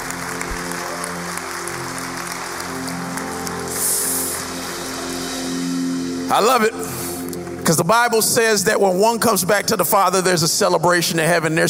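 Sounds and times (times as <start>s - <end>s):
church audience clapping on Christmas Day: 0.0s - 5.3s
speech: 6.3s - 6.8s, 7.7s - 11.6s.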